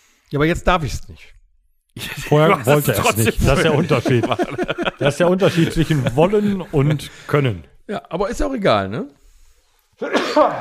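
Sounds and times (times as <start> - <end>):
speech: 0.3 - 1.4, 2.0 - 9.2, 10.0 - 10.5
laughter: 2.0 - 7.2
loud sneeze: 10.0 - 10.5.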